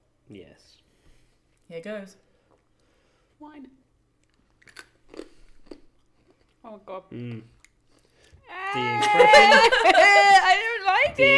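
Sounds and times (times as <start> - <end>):
speech: 0.3 - 0.9, 1.7 - 2.3, 3.4 - 3.8, 6.6 - 7.6, 8.5 - 11.3
crunching as a wasabi pea is bitten and chewed: 4.2 - 6.6
laughter: 8.6 - 11.3.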